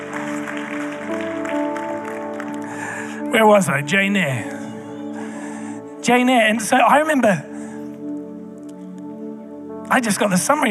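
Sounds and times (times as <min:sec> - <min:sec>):
large crowd applauding and cheering for kids at a water baptism: 0:00.0 - 0:03.4
sustained musical tones humming: 0:00.0 - 0:10.6
speech: 0:03.4 - 0:04.6, 0:06.1 - 0:07.5, 0:09.9 - 0:10.6.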